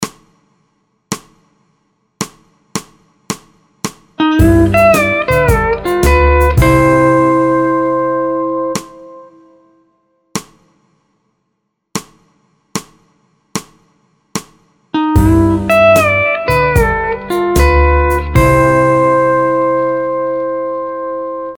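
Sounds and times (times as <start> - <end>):
musical vamp in C in four four time: 4.2 - 9.7, 15.0 - 21.5.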